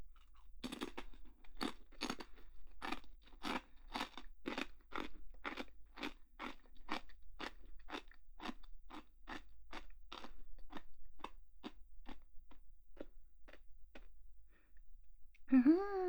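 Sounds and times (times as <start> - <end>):
person eating a crunchy snack: 0.2 - 12.2
brief vocal sound: 15.5 - 16.0.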